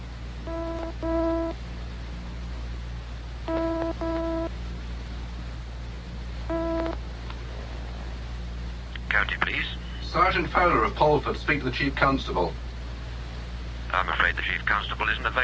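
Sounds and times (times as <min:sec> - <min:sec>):
steady low telephone line hum: 0:00.0 - 0:15.4
double-ring telephone ringback tone on a call to county police headquarters: 0:00.5 - 0:01.6, 0:03.5 - 0:04.5, 0:06.5 - 0:07.0
speech: 0:10.1 - 0:12.6, 0:14.3 - 0:15.4.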